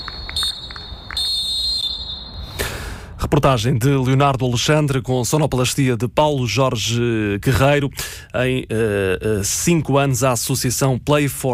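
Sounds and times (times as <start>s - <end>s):
referee's whistle blowing to end the game: 0.0s - 2.8s
low rumble of outdoor noise: 0.0s - 11.5s
speech: 3.3s - 11.5s.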